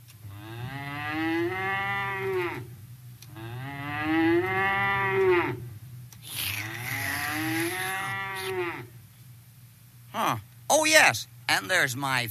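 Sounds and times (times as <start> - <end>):
cow mooing: 0.3 - 2.7, 3.3 - 5.8, 6.5 - 9.0
speech: 11.0 - 12.2.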